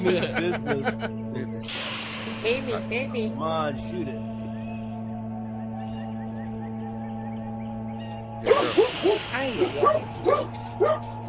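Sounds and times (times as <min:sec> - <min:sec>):
laughter: 0:00.0 - 0:01.6
speech: 0:00.0 - 0:01.8, 0:02.4 - 0:04.3, 0:08.4 - 0:11.2
steady low hum: 0:00.0 - 0:11.2
pet dog barking: 0:08.4 - 0:11.1.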